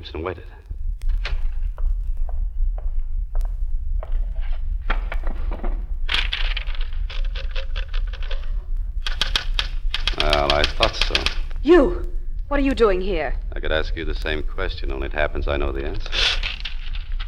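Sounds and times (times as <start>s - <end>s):
speech: 0.0s - 0.6s, 10.9s - 16.2s
steady low hum: 0.0s - 17.2s
portable typewriter clacking: 9.0s - 11.4s.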